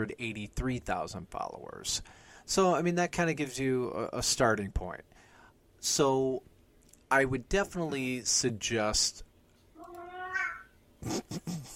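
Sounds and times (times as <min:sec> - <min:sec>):
speech: 0:00.0 - 0:05.2, 0:05.8 - 0:06.5, 0:07.1 - 0:09.3, 0:11.0 - 0:11.7
hungry cat meowing: 0:09.8 - 0:10.7.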